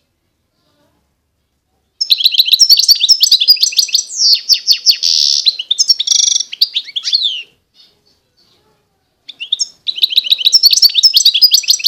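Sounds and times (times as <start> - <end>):
wild European goldfinch song with twittering, trill and buzzy rasp: 2.0 - 11.8.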